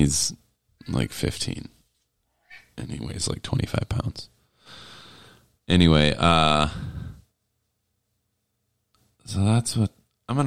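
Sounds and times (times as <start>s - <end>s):
speech: 0.0s - 1.8s, 2.8s - 4.8s, 5.7s - 7.0s, 9.2s - 10.4s
cat meowing: 2.3s - 2.8s.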